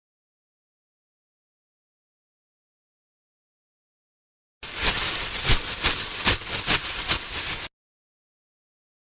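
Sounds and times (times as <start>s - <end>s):
bush rustling: 4.6s - 7.7s.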